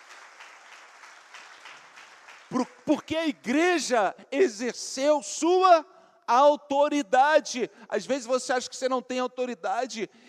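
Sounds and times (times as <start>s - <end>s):
church congregation applauding: 0.0s - 3.2s
speech: 2.5s - 10.2s.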